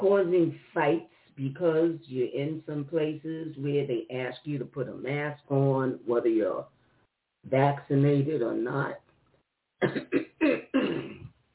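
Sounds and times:
speech: 0.0 - 6.8, 7.4 - 9.0, 9.8 - 10.5
person clearing throat: 9.8 - 11.4.

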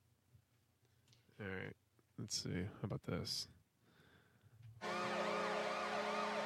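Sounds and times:
speech: 1.4 - 3.6
hockey goal siren: 4.8 - 6.4.

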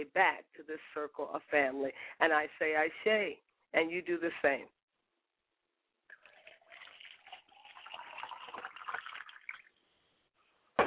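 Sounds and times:
speech: 0.0 - 4.8
water pouring into a glass: 6.1 - 9.8.

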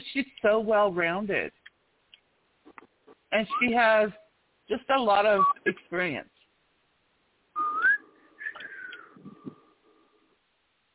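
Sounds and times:
speech: 0.2 - 1.6, 3.3 - 6.3
person whistling a short wavering tune with dry lips: 7.6 - 9.2.

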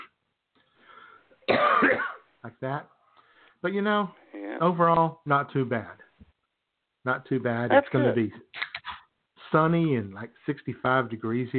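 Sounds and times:
harsh hacking cough: 1.5 - 2.3
speech: 2.4 - 3.0, 3.6 - 6.0, 7.0 - 8.6, 9.5 - 11.5.

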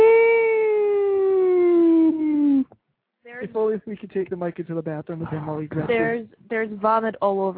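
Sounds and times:
voice imitating a four-alarm siren: 0.0 - 2.7
speech: 3.5 - 7.5.

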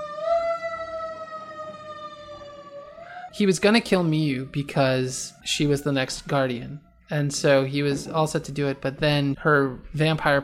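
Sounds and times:
fire truck siren passing: 0.0 - 6.8
speech: 3.3 - 10.4.

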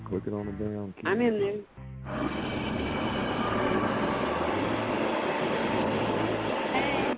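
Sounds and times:
speech: 0.1 - 2.7
train rumbling past: 2.1 - 7.1.

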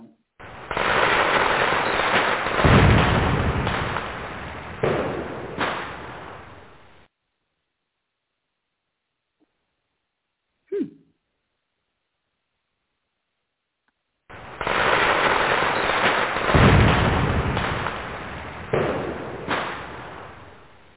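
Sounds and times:
fireworks crackling and booming: 0.4 - 7.1, 14.3 - 20.9.

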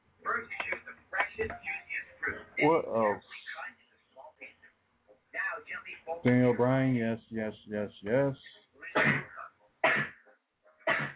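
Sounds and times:
speech: 1.4 - 1.7, 2.3 - 3.4, 6.2 - 9.2
boy coughing: 9.0 - 10.2, 10.9 - 11.1.

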